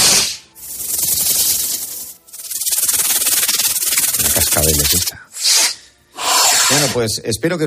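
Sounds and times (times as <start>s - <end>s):
snake hissing: 0.0s - 7.0s
speech: 4.6s - 5.3s, 6.7s - 7.6s.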